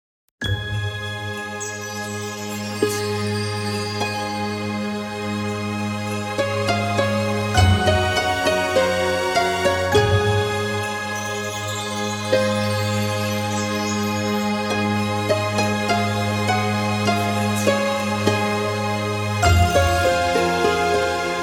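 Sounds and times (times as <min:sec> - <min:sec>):
harp: 0:00.4 - 0:21.4
orchestra playing: 0:06.5 - 0:11.7, 0:15.2 - 0:21.4.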